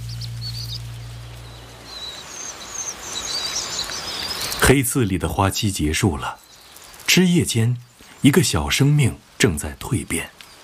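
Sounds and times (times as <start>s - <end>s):
low steady hum: 0.0s - 2.0s
red-backed shrikes calling: 0.0s - 4.6s
soft broadband outdoor hiss: 0.0s - 10.6s
speech: 4.7s - 6.5s, 7.1s - 10.4s.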